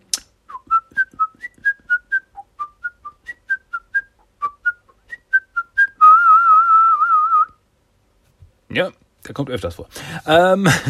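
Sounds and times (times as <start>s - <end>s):
person whistling a staccato melody imitating a flute: 0.5s - 7.6s
speech: 8.8s - 10.8s.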